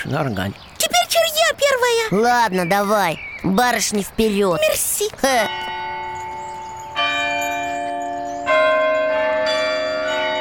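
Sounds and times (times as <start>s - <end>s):
speech: 0.0s - 5.7s
podzvonnye and zazvonnye church bells rung with levers: 4.6s - 10.4s.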